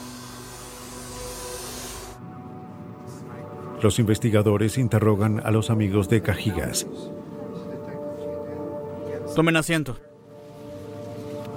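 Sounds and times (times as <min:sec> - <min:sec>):
vacuum cleaner cleaning a car interior: 0:00.0 - 0:02.2
speech: 0:03.8 - 0:07.3, 0:09.4 - 0:10.1.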